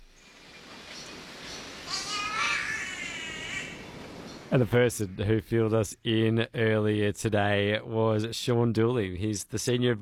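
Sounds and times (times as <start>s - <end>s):
steady hiss of rainforest ambience: 0.0s - 5.2s
catbird cat-like wailing call: 1.6s - 4.5s
speech: 4.5s - 9.9s.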